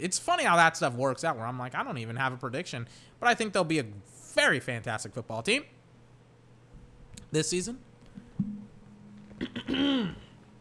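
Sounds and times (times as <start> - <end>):
speech: 0.0 - 5.8, 7.3 - 8.5, 9.4 - 10.2
throat clearing to get rid of phlegm: 9.4 - 10.4.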